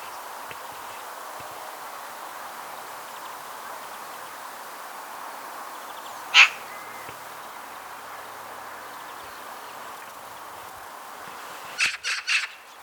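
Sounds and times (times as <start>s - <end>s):
background hiss: 0.0s - 12.8s
Eurasian magpie Pica pica rasping calls: 6.3s - 7.0s, 11.8s - 12.6s.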